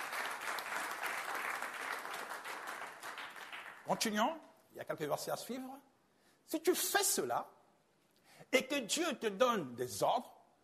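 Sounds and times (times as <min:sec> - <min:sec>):
congregation applauding at a church service: 0:00.0 - 0:04.2
speech: 0:03.9 - 0:05.9, 0:06.5 - 0:07.6, 0:08.4 - 0:10.4.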